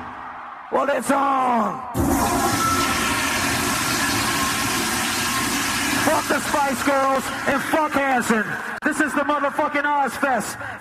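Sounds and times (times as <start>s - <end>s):
speech: 0.7s - 2.5s, 6.1s - 10.7s
toilet flushing: 2.0s - 8.8s.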